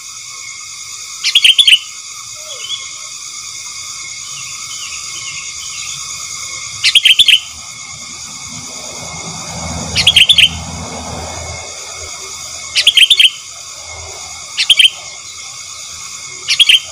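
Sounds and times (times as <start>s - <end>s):
steady high hum: 0.0s - 16.9s
Sooty-headed bulbul chattering: 1.2s - 16.9s.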